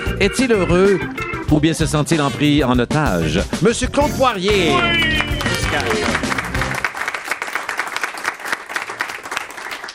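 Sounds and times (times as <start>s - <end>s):
speech: 0.2s - 6.3s
studio audience applause welcoming a guest: 4.5s - 9.9s.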